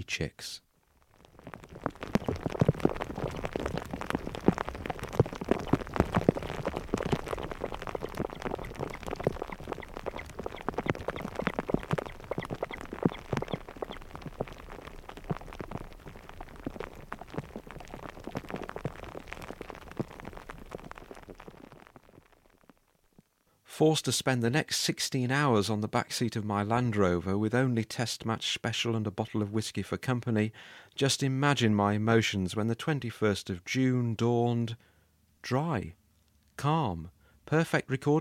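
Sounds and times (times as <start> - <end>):
speech: 0.0 - 0.6, 23.8 - 36.0, 36.6 - 38.1
hail bouncing off surfaces: 1.2 - 22.7
heavy rain: 1.3 - 22.6.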